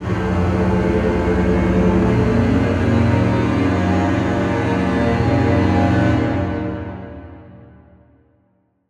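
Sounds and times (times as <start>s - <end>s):
low suspense horror strings: 0.0s - 7.1s.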